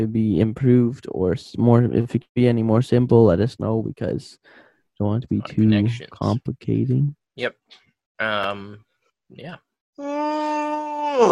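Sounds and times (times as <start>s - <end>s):
speech: 0.0s - 11.2s
voiced yawn with groaning vocal sounds: 10.0s - 11.2s.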